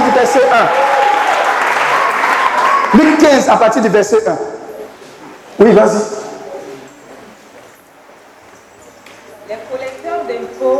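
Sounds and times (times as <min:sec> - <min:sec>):
church congregation applauding: 0:00.0 - 0:03.5
speech: 0:00.2 - 0:00.9, 0:02.9 - 0:04.5, 0:05.6 - 0:06.2.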